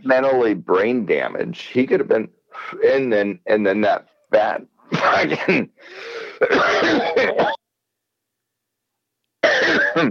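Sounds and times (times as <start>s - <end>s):
speech: 0.0s - 7.6s, 9.7s - 10.0s
harsh coughing: 4.9s - 7.6s, 9.4s - 10.0s
throat clearing: 6.4s - 7.6s, 9.4s - 10.0s.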